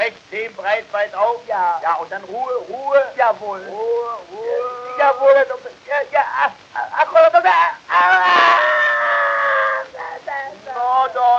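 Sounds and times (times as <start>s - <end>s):
speech: 0.1s - 8.5s
man screaming in pain during tooth extraction: 4.3s - 5.4s, 7.5s - 11.0s.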